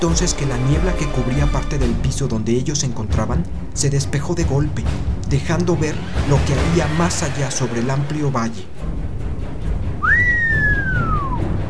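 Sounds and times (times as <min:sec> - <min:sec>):
speech: 0:00.0 - 0:08.9
prolonged human whistle: 0:10.0 - 0:11.5.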